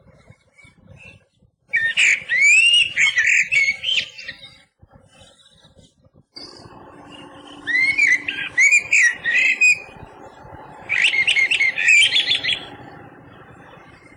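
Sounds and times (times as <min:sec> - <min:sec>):
Eurasian blackbird singing: 0:01.7 - 0:04.6, 0:06.4 - 0:14.1
steady low hum: 0:06.1 - 0:14.1.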